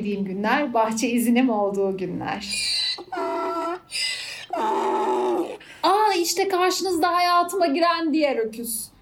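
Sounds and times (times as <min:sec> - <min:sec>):
speech: 0:00.0 - 0:08.9
man mimicking a donkey's bray: 0:02.5 - 0:05.6.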